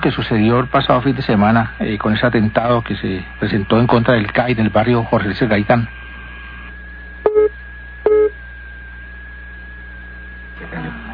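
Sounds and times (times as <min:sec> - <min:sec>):
speech: 0:00.0 - 0:06.0
low steady hum: 0:00.0 - 0:11.1
busy tone on a phone line after a dropped call: 0:07.2 - 0:08.4.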